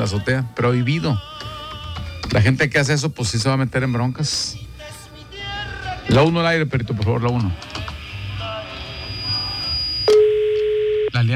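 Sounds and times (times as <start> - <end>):
speech: 0.0 - 1.4, 2.3 - 4.6, 6.1 - 7.8, 11.2 - 11.3
telephone line hiss: 8.0 - 11.1
thin, high steady telephone tone on a call line: 8.3 - 11.3
lower, louder steady telephone tone: 8.8 - 11.3.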